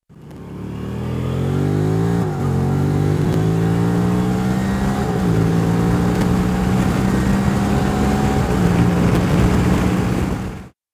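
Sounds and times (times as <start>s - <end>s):
motorcycle exhaust at highway speed: 0.1s - 10.7s.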